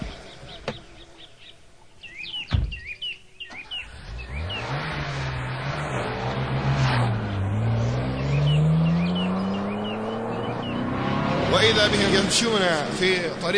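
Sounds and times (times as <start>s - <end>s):
birds chirping faintly: 0.0s - 5.0s, 7.1s - 13.5s
luxury car engine revving and accelerating: 3.5s - 13.5s
speech: 11.7s - 13.5s.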